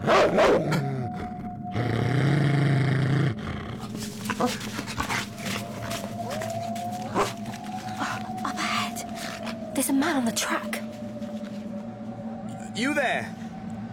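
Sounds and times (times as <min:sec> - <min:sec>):
white hound with red ears growling: 0:00.0 - 0:10.2
rustling movement in the brush: 0:03.8 - 0:12.4
speech: 0:04.4 - 0:04.8, 0:10.1 - 0:10.8, 0:12.8 - 0:13.4.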